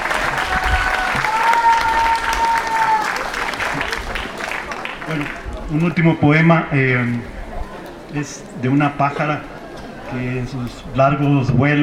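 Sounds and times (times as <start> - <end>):
audience applause: 0.0 - 5.7
speech: 5.2 - 7.4, 8.1 - 9.5, 10.1 - 11.8.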